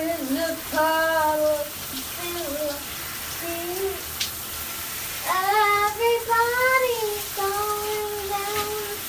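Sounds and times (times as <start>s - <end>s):
child singing made-up melody in shower: 0.0s - 4.0s, 5.2s - 9.0s
running shower hiss: 0.0s - 9.0s.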